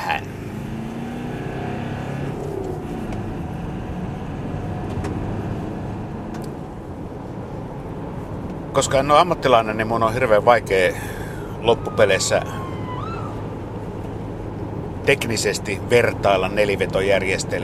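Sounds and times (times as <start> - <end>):
Subaru Forester SUV engine and road noise on a test drive: 0.0 - 17.6
tire hum of a moving Subaru Forester SUV: 0.0 - 17.6
speech: 8.8 - 12.7, 15.1 - 17.6.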